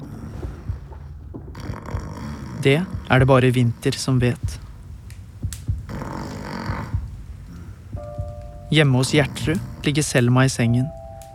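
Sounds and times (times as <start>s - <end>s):
person snoring: 0.0s - 4.7s, 5.9s - 8.1s, 8.7s - 10.5s
soft low thumps: 0.0s - 11.3s
speech: 2.6s - 4.6s, 8.7s - 11.0s
faint tone: 8.0s - 11.3s.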